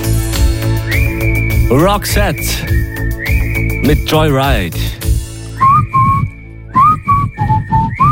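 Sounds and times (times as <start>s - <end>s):
person whistling a melody: 0.7s - 4.3s, 5.5s - 8.1s
speech: 1.7s - 2.8s, 3.8s - 5.0s.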